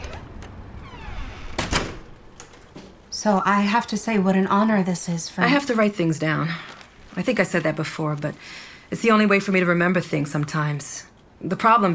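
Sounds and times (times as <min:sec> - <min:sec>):
door creaking as it swings shut: 0:00.0 - 0:03.1
speech: 0:03.2 - 0:11.9.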